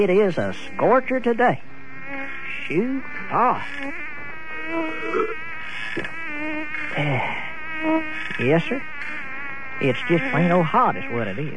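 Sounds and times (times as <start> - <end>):
speech: 0.0 - 1.7, 2.5 - 4.0, 4.7 - 6.2, 6.9 - 9.2, 9.8 - 11.5
mosquito whining: 0.0 - 11.5.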